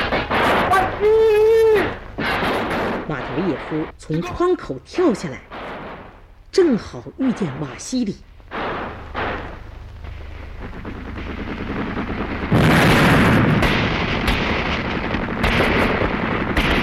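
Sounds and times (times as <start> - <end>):
gunfire in a shootout on a counter-revolutionary hideout: 0.0 - 3.9, 5.5 - 6.2, 8.5 - 16.8
speech: 3.1 - 5.6, 6.5 - 8.3.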